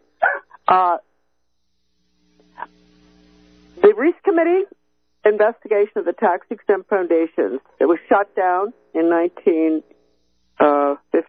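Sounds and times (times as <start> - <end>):
low hum: 0.0 - 11.2
dog barking: 0.2 - 0.4
speech: 4.0 - 9.9, 10.6 - 11.2.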